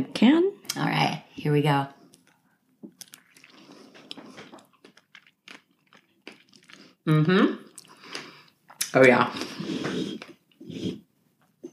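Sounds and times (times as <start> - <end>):
speech: 0.0 - 2.0, 7.1 - 7.6, 8.9 - 11.0
someone biting into a slice and chewing with crisp crackles: 4.1 - 6.8.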